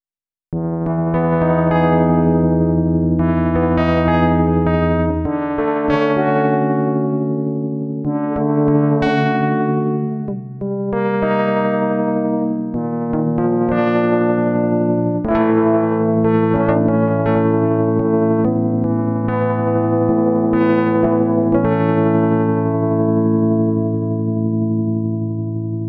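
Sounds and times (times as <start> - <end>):
synthesized electric piano: 0.6 - 25.8.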